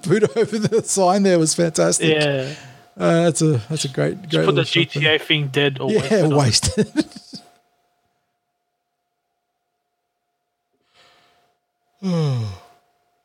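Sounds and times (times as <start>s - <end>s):
laughter: 0.0s - 1.2s, 5.9s - 7.5s
speech: 0.1s - 7.3s, 12.0s - 12.4s
person yawning: 12.0s - 12.8s.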